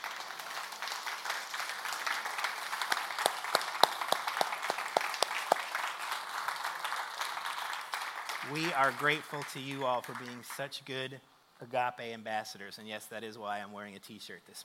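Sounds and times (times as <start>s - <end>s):
church audience applauding: 0.0s - 10.6s
speech: 8.5s - 14.6s.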